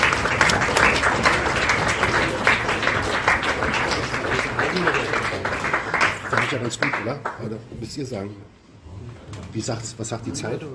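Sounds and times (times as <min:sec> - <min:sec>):
audience applauding after a lecture: 0:00.0 - 0:07.5
speech: 0:06.7 - 0:08.6, 0:09.5 - 0:10.7.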